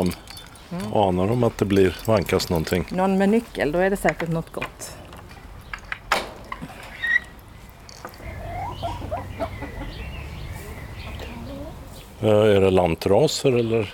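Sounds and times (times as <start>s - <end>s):
speech: 0.0s - 5.0s, 12.2s - 13.9s
hens clucking in a henhouse: 6.5s - 12.1s.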